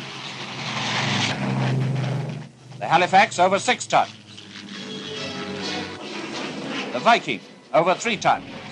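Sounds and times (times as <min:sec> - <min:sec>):
propeller cargo plane droning overhead: 0:00.0 - 0:08.7
speech: 0:02.8 - 0:04.2, 0:07.0 - 0:08.6.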